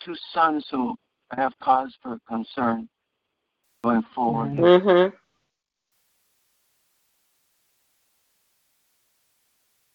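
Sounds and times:
speech: 0:00.0 - 0:02.9, 0:03.8 - 0:05.2
static interference hiss on a remote call connection: 0:06.0 - 0:09.9.

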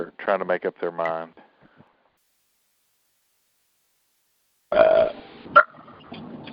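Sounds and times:
speech: 0:00.0 - 0:01.5, 0:04.7 - 0:05.6
person burping loudly: 0:04.7 - 0:05.1.

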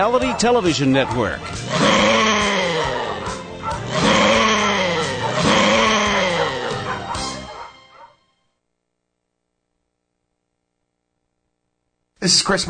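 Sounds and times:
speech: 0:00.0 - 0:02.4, 0:12.2 - 0:12.6
several dogs barking: 0:00.0 - 0:08.2.

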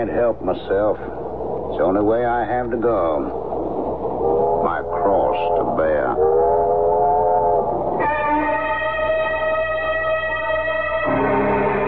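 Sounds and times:
speech: 0:00.0 - 0:03.4, 0:04.2 - 0:06.6
moving train rumbling: 0:00.0 - 0:11.8
train whistle: 0:06.0 - 0:11.8.

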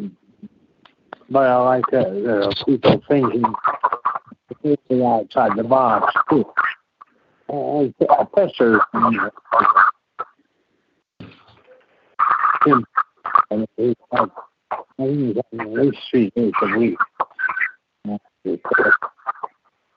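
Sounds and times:
tinny voice over speakerphone line with feedback: 0:01.2 - 0:06.7, 0:07.5 - 0:09.9, 0:12.2 - 0:19.5
speech: 0:01.3 - 0:03.7, 0:04.6 - 0:06.6, 0:07.5 - 0:09.8, 0:12.6 - 0:17.1, 0:18.0 - 0:19.1.

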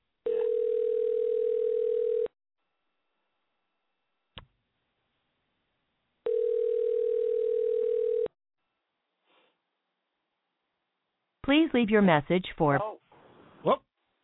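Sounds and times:
telephone ringback tone through a handset: 0:00.3 - 0:02.3, 0:06.3 - 0:08.3
speech: 0:11.5 - 0:13.0, 0:13.6 - 0:13.9.

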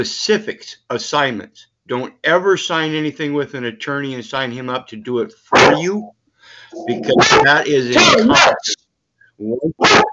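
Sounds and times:
speech: 0:00.0 - 0:08.8, 0:09.4 - 0:10.1
dog barking: 0:05.5 - 0:06.1, 0:06.8 - 0:08.8, 0:09.8 - 0:10.1.

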